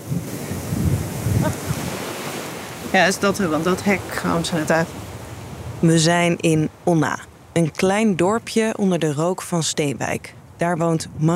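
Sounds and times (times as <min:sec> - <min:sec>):
strong wind roaring outdoors in a small village: 0:00.0 - 0:08.6
gusty low rumbles of wind buffeting the microphone: 0:00.0 - 0:11.3
speech: 0:02.9 - 0:05.0, 0:05.8 - 0:11.3.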